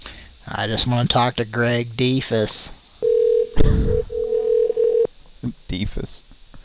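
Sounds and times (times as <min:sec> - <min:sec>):
speech: 0:00.4 - 0:02.8, 0:05.4 - 0:06.3
electronic telephone tone on a call ringing through to voicemail: 0:03.0 - 0:05.1.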